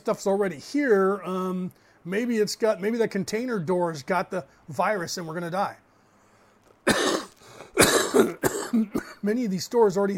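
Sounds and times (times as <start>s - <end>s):
speech: 0.0s - 5.8s, 8.8s - 10.1s
harsh loud coughs from a person with COPD: 6.8s - 9.2s.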